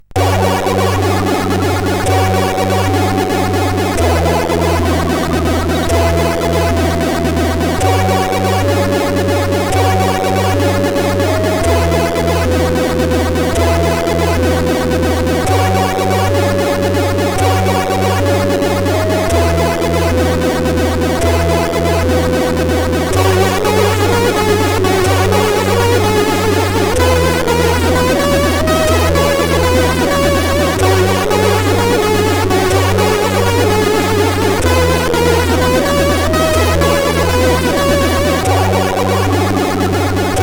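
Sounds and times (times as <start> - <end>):
crack intro music on SID CSG8580R5 chip: 0.2 - 40.4.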